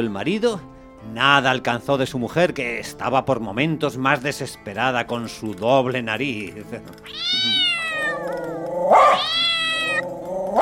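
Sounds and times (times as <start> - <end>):
speech: 0.0 - 7.6
cat yowling and caterwauling at a person for a blood sausage: 7.1 - 10.6.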